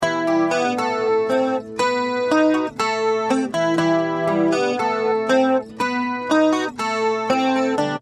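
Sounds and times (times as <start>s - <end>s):
acoustic guitar through Dimension C: 0.0s - 7.9s.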